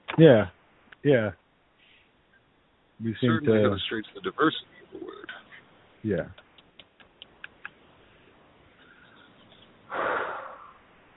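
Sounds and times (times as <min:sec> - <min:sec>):
speech: 0:00.2 - 0:01.4, 0:03.0 - 0:05.1, 0:06.0 - 0:06.4
loud heavy exhale into microphone: 0:08.8 - 0:10.8.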